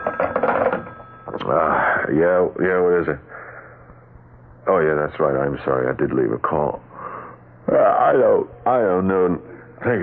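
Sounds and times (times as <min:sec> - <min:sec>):
telephone ringing with a steady trilling tone: 0:00.0 - 0:01.8
speech: 0:01.5 - 0:03.4, 0:04.7 - 0:06.9, 0:07.7 - 0:10.0.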